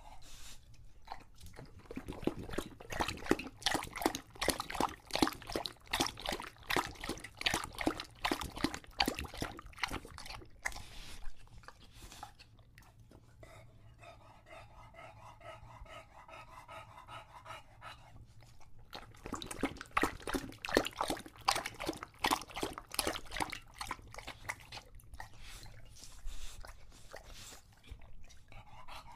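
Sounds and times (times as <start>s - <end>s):
English Bulldog wheezy snuffling panting after a long walk: 0.0s - 29.1s
English Bulldog lapping water from a bowl: 1.0s - 13.1s, 18.2s - 29.1s.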